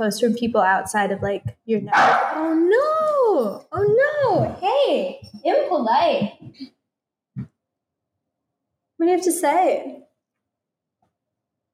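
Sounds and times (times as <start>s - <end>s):
speech: 0.0s - 6.7s, 9.0s - 10.0s
female dog barking gruffly: 1.9s - 2.6s.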